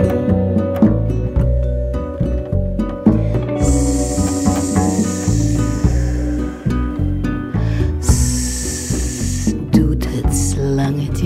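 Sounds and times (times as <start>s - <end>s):
bouncy music: 0.0s - 11.2s
snake hissing: 3.2s - 9.7s.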